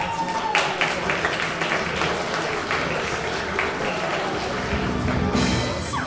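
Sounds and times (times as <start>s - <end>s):
cheers and whoops: 0.0s - 1.0s
large crowd applauding: 0.0s - 5.9s.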